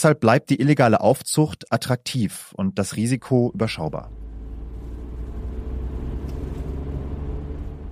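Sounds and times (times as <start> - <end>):
speech: 0.0 - 4.2
low engine rumble of a moving car: 3.5 - 7.9
road noise from inside a moving car: 3.6 - 7.9.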